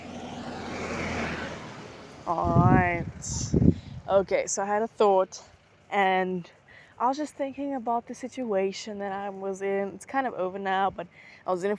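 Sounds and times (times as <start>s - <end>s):
car passing by with road rumble and tire hiss: 0.0s - 4.1s
speech: 3.2s - 11.7s.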